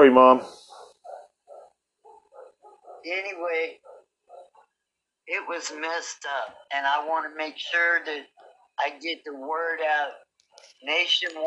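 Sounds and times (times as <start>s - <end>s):
speech: 0.0s - 0.6s, 3.0s - 3.9s, 5.3s - 11.4s
dog barking outside: 0.7s - 3.1s, 3.7s - 4.6s.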